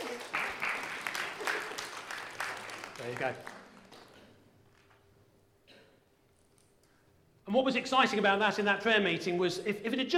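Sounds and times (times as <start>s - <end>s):
audience applause: 0.0s - 4.4s
speech: 3.0s - 3.6s, 7.5s - 10.1s.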